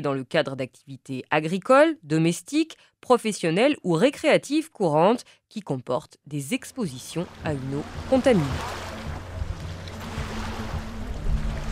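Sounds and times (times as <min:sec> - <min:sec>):
speech: 0:00.0 - 0:08.8
lake waves splashing against truck wheels: 0:07.2 - 0:11.6.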